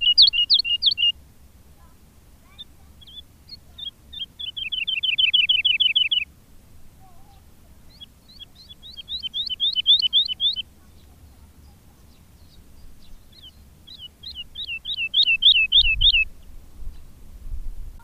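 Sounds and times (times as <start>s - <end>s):
woodlark song: 0.0s - 1.2s, 2.5s - 6.3s, 7.3s - 16.5s.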